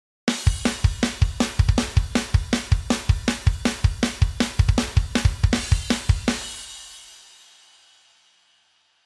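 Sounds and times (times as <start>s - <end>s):
drum-off drums playing: 0.3s - 7.0s.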